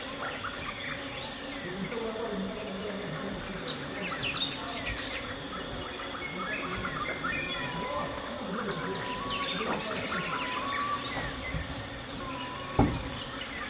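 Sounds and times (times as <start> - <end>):
birdsong at a jungle camp in the Congo rainforest: 0.0 - 13.6
high shimmering insect drone: 0.0 - 13.6
swarms of bees at a jungle camp: 0.0 - 13.6
thud: 12.7 - 13.2.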